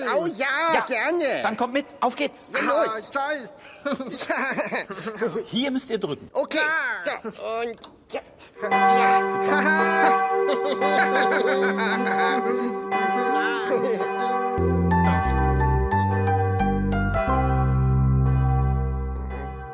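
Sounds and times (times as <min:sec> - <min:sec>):
speech: 0:00.0 - 0:13.1, 0:13.7 - 0:14.3
bell tolling: 0:08.6 - 0:19.7
soft laughter: 0:10.4 - 0:12.8.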